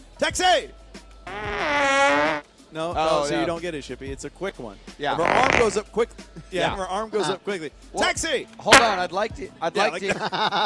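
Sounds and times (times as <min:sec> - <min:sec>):
speech: 0:00.2 - 0:01.8, 0:02.7 - 0:10.6
person's voice imitating a fart: 0:01.3 - 0:02.4, 0:05.2 - 0:05.8
laughter: 0:09.9 - 0:10.6.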